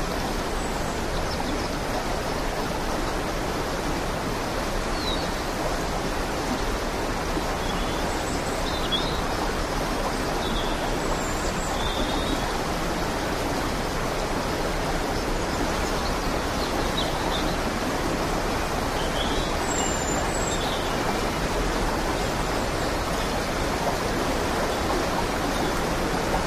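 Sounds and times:
creek rushing in the Rocky Mountains: 0.0s - 26.4s.

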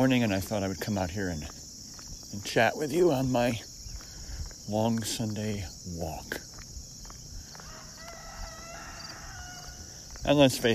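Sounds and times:
speech: 0.0s - 1.6s, 2.3s - 3.7s, 4.7s - 6.4s, 10.2s - 10.7s
rooster crowing: 7.5s - 10.0s.

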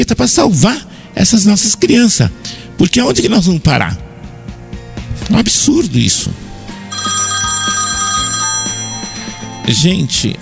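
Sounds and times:
speech: 0.0s - 4.1s, 5.3s - 7.2s, 9.6s - 10.4s
mobile phone ringing with a bright electronic melody: 6.9s - 10.4s.

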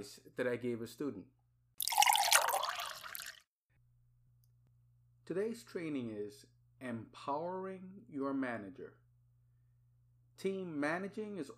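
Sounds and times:
speech: 0.0s - 1.4s, 5.3s - 9.0s, 10.4s - 11.5s
coffee pouring into a cup: 1.8s - 3.4s.

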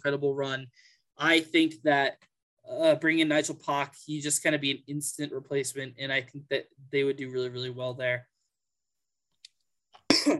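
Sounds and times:
speech: 0.0s - 8.3s
breaths: 0.7s - 1.2s
loud cough: 10.1s - 10.3s.

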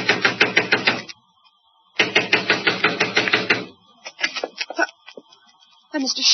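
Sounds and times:
fist pounding on a front door: 0.0s - 1.0s, 2.0s - 3.7s.

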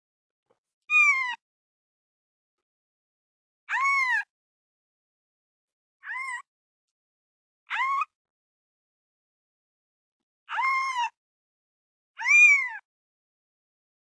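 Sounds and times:
kitten meowing: 0.9s - 1.4s, 3.7s - 4.3s, 6.0s - 6.5s, 7.7s - 8.1s, 10.5s - 11.2s, 12.2s - 12.9s.

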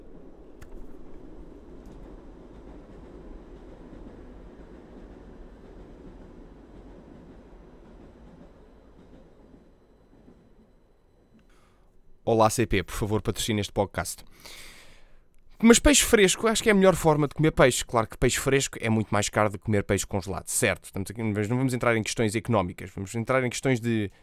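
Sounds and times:
train rumbling past: 0.0s - 11.5s
speech: 12.3s - 14.7s, 15.6s - 24.2s.

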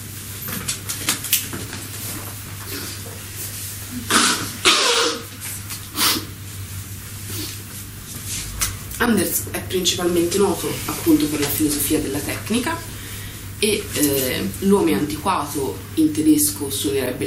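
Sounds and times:
steady low hum: 0.0s - 17.2s
person blowing their nose: 4.0s - 6.4s
soft sniffs: 5.9s - 6.3s
speech: 9.0s - 13.0s, 13.6s - 17.2s.

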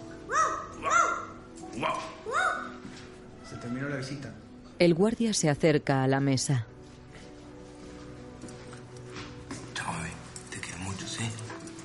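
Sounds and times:
person imitating a dog barking: 0.3s - 2.8s
speech: 3.6s - 6.7s.

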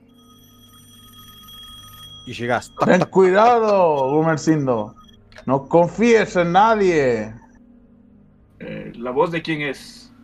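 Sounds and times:
telephone ringing faintly: 0.0s - 7.6s
speech: 2.3s - 7.4s, 8.6s - 10.0s.

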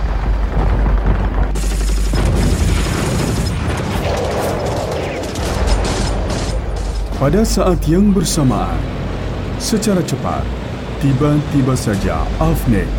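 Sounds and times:
booming gunfire over the sky of Indonesia: 0.0s - 7.5s
heavy blasts: 0.0s - 7.8s
sharp repeated gunfire cracks: 0.3s - 7.3s
speech: 7.2s - 8.9s, 9.6s - 12.9s.

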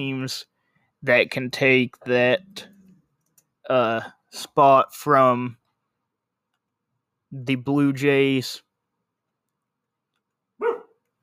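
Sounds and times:
speech: 0.0s - 2.7s, 3.7s - 5.6s, 7.3s - 8.6s
dog barking: 10.6s - 11.0s.

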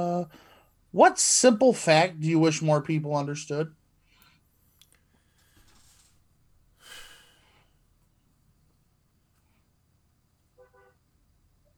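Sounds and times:
speech: 0.0s - 3.8s
car horn honk: 10.6s - 11.0s.

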